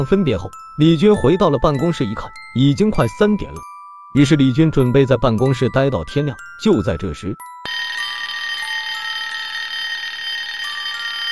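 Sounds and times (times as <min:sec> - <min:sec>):
speech: 0:00.0 - 0:07.8
telephone ringing in an office: 0:07.7 - 0:11.3.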